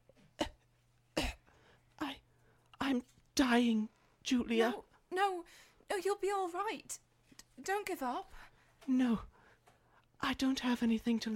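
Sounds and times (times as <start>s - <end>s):
dying woman coughing softly: 1.2s - 1.5s
speech: 2.9s - 7.0s, 7.6s - 9.3s, 10.2s - 11.3s.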